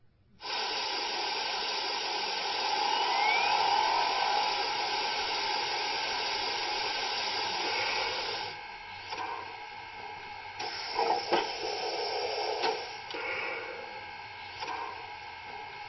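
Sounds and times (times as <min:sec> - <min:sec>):
steam locomotive venting steam: 0:00.4 - 0:08.6, 0:10.6 - 0:13.3.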